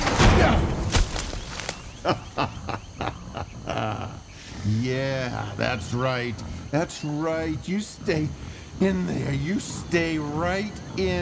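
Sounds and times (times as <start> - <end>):
door slamming shut: 0.0 - 1.2
rumbling noise: 0.0 - 11.1
laughter: 1.9 - 5.9
speech: 2.0 - 2.6, 4.8 - 11.1.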